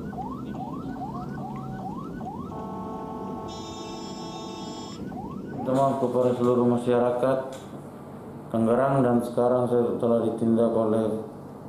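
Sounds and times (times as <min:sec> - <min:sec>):
ambulance siren wailing: 0:00.0 - 0:06.6
dense traffic rumbling in Tangerang: 0:00.0 - 0:11.6
speech: 0:05.7 - 0:07.9, 0:08.5 - 0:11.3.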